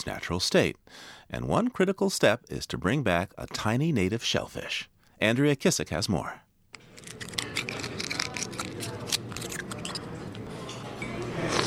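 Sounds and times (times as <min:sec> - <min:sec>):
speech: 0:00.0 - 0:06.4
lunch crowd slurping oysters: 0:06.8 - 0:11.6
steady hum of a busy oyster restaurant: 0:06.8 - 0:11.6.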